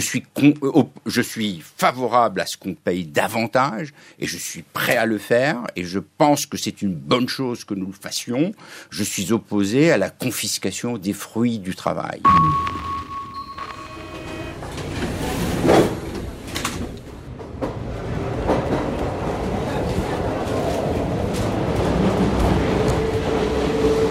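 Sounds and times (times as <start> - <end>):
speech: 0.0 - 13.0
brief high tone: 12.2 - 15.2
metro train rumble and rattle from inside the carriage: 14.1 - 24.0.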